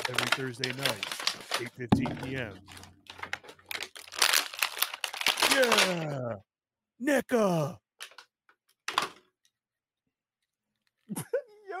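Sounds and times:
plastic and paper packaging ripped open: 0.0 - 1.7, 3.7 - 6.0
speech: 0.1 - 2.8, 5.6 - 8.1.

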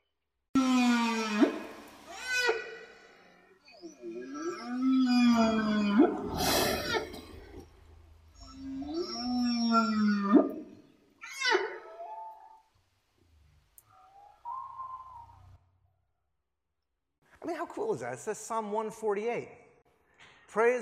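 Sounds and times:
whale song in the ocean: 0.6 - 7.2, 8.4 - 12.7, 13.8 - 15.7
speech: 17.9 - 19.6, 20.5 - 20.8.

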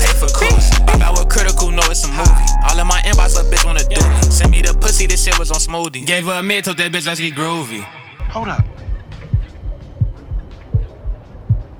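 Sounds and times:
deep heartbeat sound effect: 0.0 - 5.7, 8.2 - 11.7
speech: 5.4 - 8.8.

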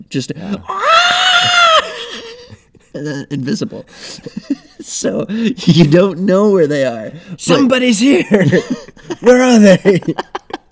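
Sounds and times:
speech: 0.0 - 1.6, 3.0 - 10.4
person yelling at the top of their lungs: 0.7 - 2.0
laughter: 8.2 - 10.6.

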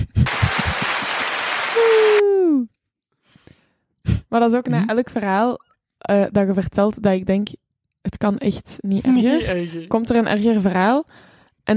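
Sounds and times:
dense clapping: 0.1 - 2.2
speech: 4.3 - 11.7.

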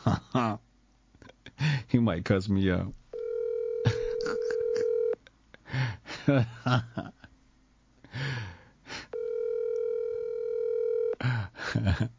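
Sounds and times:
speech: 0.0 - 0.6, 1.6 - 3.0, 5.7 - 7.2, 11.8 - 12.1
outgoing phone call electronic ringback tone: 3.2 - 5.2, 9.1 - 11.2.

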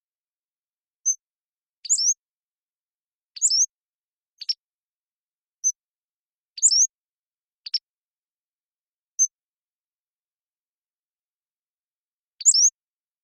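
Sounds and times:
Pacific-slope flycatcher singing high thin sliding phrases: 1.8 - 2.2, 3.4 - 3.8, 4.4 - 4.6, 6.6 - 6.9, 7.6 - 7.9, 12.4 - 12.8.

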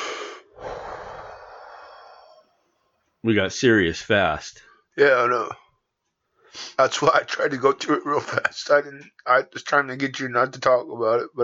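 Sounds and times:
person taking a deep breath: 0.0 - 2.5
speech: 3.2 - 5.6, 6.5 - 11.4.

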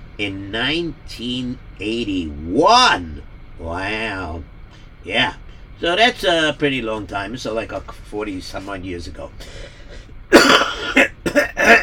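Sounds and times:
speech: 0.2 - 9.8
person clearing throat: 10.3 - 11.8.

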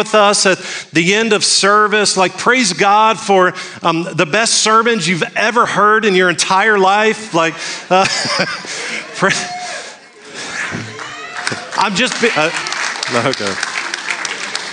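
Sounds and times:
speech: 0.0 - 9.6, 11.5 - 13.7
laughter: 7.4 - 14.7
audience applause during a church service: 10.3 - 14.7.

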